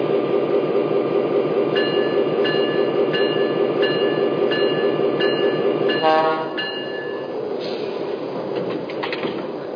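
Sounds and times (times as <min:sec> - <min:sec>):
passenger train rumbling on track at a station stop: 0:00.0 - 0:09.7
bell-like tone ringing: 0:01.8 - 0:07.4.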